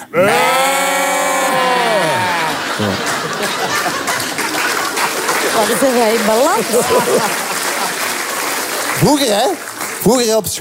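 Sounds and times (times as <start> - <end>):
people imitating sheep bleating together: 0.0 - 2.9, 6.4 - 7.6
people laughing: 0.0 - 10.0
overlapping chatter: 0.0 - 10.5
speech: 0.1 - 0.4, 5.6 - 7.4, 9.0 - 10.5.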